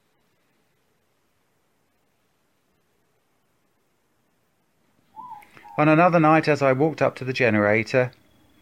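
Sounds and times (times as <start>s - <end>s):
distant morepork owl hooting at night: 5.1s - 6.3s
speech: 5.8s - 8.2s.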